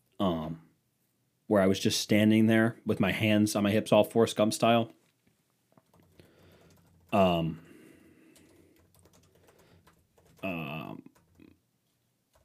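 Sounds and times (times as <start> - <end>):
speech: 1.5 - 5.0, 7.1 - 7.6
keyboard typing: 5.8 - 7.5, 8.2 - 11.6, 12.3 - 12.4.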